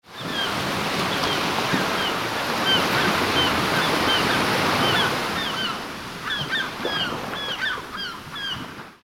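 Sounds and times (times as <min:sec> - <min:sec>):
Caribbean sea surf: 0:00.1 - 0:09.0.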